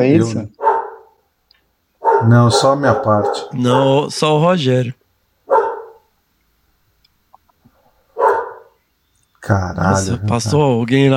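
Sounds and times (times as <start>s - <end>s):
speech: 0.0s - 0.6s, 2.2s - 5.0s, 9.5s - 11.1s
dog barking deeply: 0.6s - 1.2s, 2.0s - 4.0s, 5.5s - 6.1s, 8.2s - 8.8s
faint clicks: 6.0s - 7.8s.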